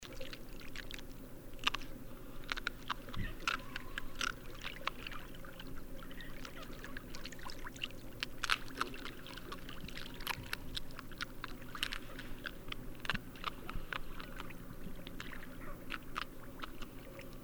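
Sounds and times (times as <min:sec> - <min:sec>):
sea otter: 0:00.0 - 0:17.4.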